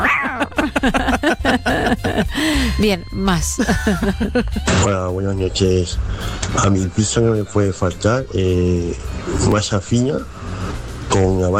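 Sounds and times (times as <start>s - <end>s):
person imitating cat meows: 0.0s - 0.5s
laughter: 0.0s - 4.9s
speech: 0.8s - 10.4s, 11.1s - 11.5s.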